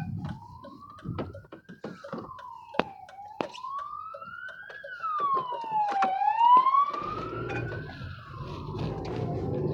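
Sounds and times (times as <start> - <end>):
police siren wailing: 0.0 - 9.7
steady traffic rumble: 0.0 - 9.7.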